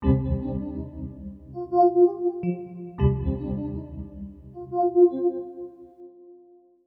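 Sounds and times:
drum and bass synthesizer keys: 0:00.0 - 0:05.3.

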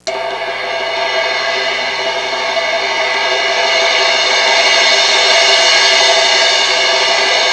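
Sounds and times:
cymbal roll: 0:00.0 - 0:07.5.

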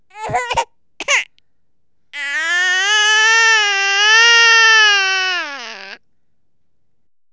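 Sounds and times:
baby crying: 0:00.1 - 0:01.3, 0:02.2 - 0:06.0.

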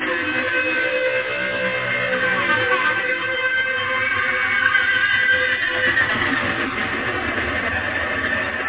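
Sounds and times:
distorted guitar: 0:00.0 - 0:08.6.

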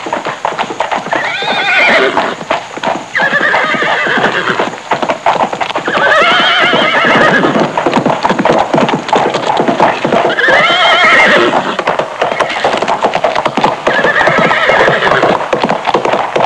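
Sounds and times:
horse trotting: 0:00.0 - 0:16.4
horse neighing: 0:01.1 - 0:02.4, 0:03.1 - 0:04.7, 0:05.8 - 0:07.8, 0:09.8 - 0:12.9, 0:13.8 - 0:15.3.

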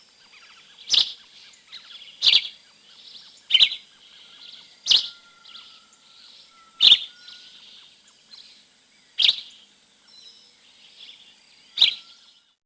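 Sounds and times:
faint bird twittering: 0:00.0 - 0:12.6
yellow-green vireo sharp chip calls: 0:00.0 - 0:12.6.

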